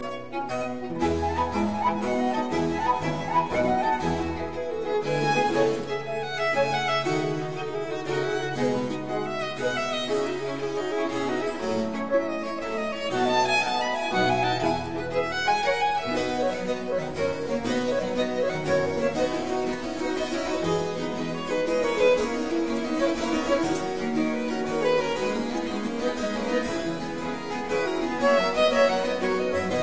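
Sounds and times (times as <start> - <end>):
string quartet playing an allegro: 0.0 - 29.8.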